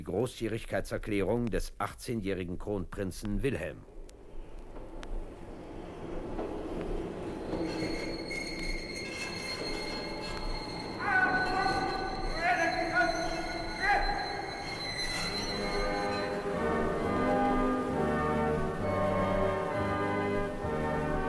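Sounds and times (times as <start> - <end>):
speech: 0.0 - 3.9
train rolling into a station with a low rumble: 3.5 - 21.2
train wheels letting out high sustained metallic squeals: 5.2 - 17.8.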